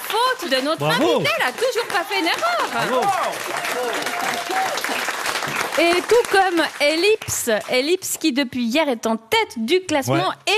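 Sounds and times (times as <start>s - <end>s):
audience applause for a quiz-game guest: 0.0s - 7.7s
speech: 0.1s - 10.5s.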